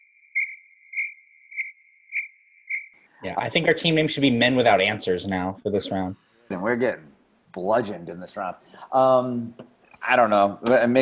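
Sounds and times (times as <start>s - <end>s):
crickets chirping: 0.0s - 2.9s
speech: 3.2s - 11.0s.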